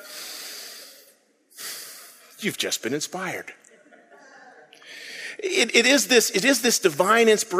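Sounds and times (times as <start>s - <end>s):
deep breath in: 0.0s - 2.3s, 4.8s - 5.4s
speech: 2.4s - 3.6s, 5.5s - 7.5s.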